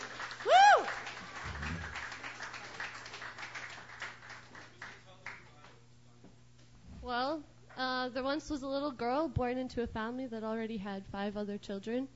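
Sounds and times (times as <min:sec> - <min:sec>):
audience applauding welcoming a performer: 0:00.0 - 0:05.5
scattered cheers: 0:00.4 - 0:01.9
speech: 0:08.2 - 0:12.1.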